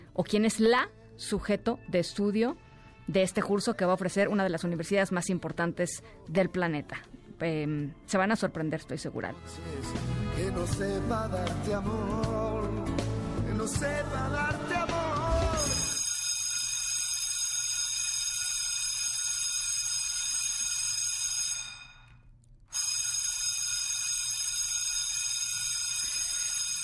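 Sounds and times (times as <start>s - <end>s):
speech: 0.2s - 12.9s, 13.6s - 14.9s
loud electric school bell ringing with harsh metallic buzz: 15.6s - 22.1s, 22.8s - 26.8s.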